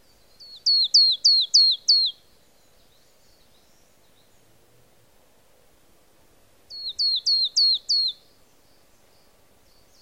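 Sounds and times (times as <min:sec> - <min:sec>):
marsh tit giving high clear downward-sliding notes: 0:00.4 - 0:02.2, 0:06.7 - 0:08.2.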